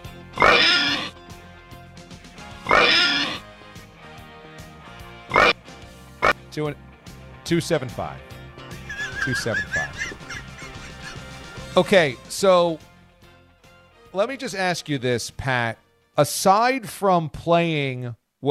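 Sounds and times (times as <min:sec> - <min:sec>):
pig oinking and squealing: 0:00.4 - 0:01.2, 0:02.6 - 0:03.4, 0:05.3 - 0:05.6
speech: 0:06.6 - 0:08.3, 0:09.2 - 0:09.8, 0:11.8 - 0:12.9, 0:14.1 - 0:18.5
laughter: 0:08.8 - 0:11.8.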